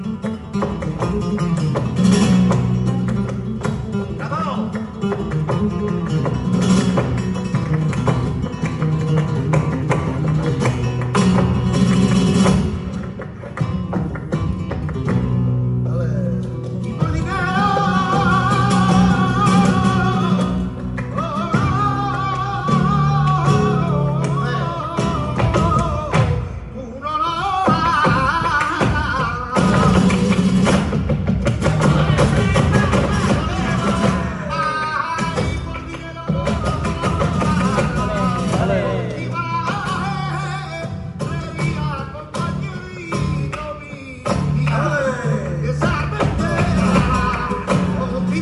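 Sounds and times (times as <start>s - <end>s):
flamenco song with soleá por bulería lyrics: 0.0s - 48.4s.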